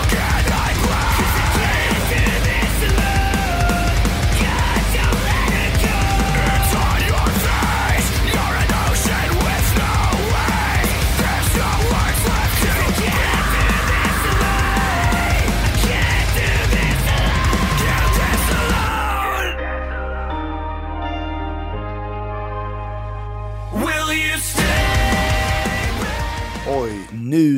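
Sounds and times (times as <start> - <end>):
metalcore pounding drums: 0.0 - 19.2, 24.6 - 27.0
harsh screamed metalcore vocals: 0.0 - 19.6
metalcore distorted guitars: 0.0 - 27.2.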